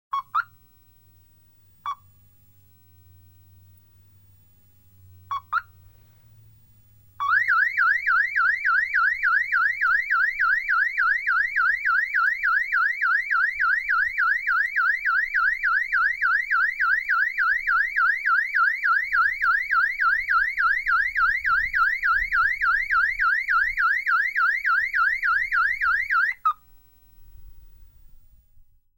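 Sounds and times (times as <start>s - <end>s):
car alarm siren: 5.3s - 5.7s, 7.2s - 26.5s.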